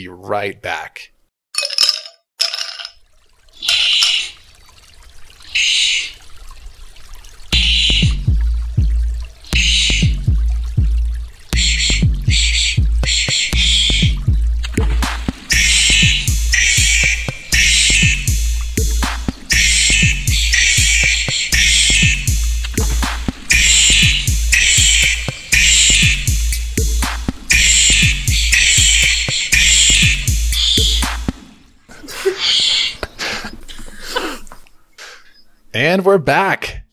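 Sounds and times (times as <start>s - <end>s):
speech: 0.0s - 1.7s, 35.9s - 36.7s
auto-tuned angry wombat noises: 3.6s - 4.4s, 5.5s - 6.2s, 7.6s - 8.1s, 9.5s - 10.1s, 11.6s - 14.1s, 15.5s - 18.4s, 19.0s - 22.3s, 23.5s - 26.3s, 27.5s - 31.2s, 32.3s - 33.1s
low throbbing drone: 7.6s - 31.3s.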